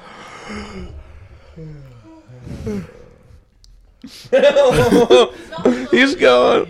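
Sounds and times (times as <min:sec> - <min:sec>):
people yawning: 0:00.0 - 0:04.3
speech: 0:00.5 - 0:01.0, 0:01.6 - 0:03.1, 0:04.0 - 0:06.6
laughter: 0:04.0 - 0:06.6.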